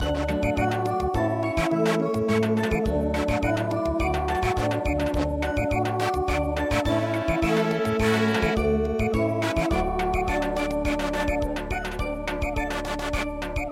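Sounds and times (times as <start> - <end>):
chime melody samba music: 0.0 - 13.7.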